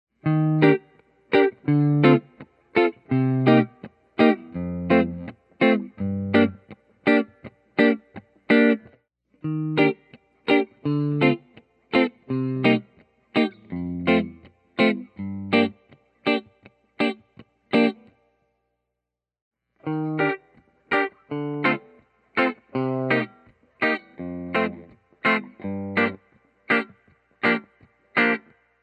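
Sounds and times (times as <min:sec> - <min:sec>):
clean double cut P90 electric guitar: 0:00.2 - 0:18.2, 0:19.8 - 0:28.7.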